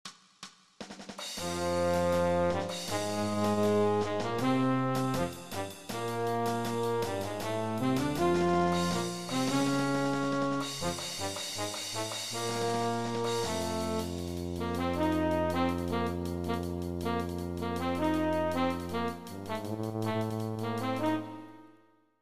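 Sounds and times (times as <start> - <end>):
music fragment at 160 bpm without trumpets: 1.2 - 21.8.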